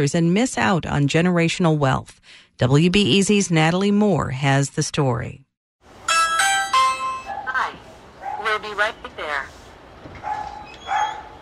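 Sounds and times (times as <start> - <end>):
speech: 0.0 - 5.4
faint noise: 5.9 - 11.3
small Shih Tzu mix dog barking at a family home: 7.3 - 8.7, 10.2 - 11.3.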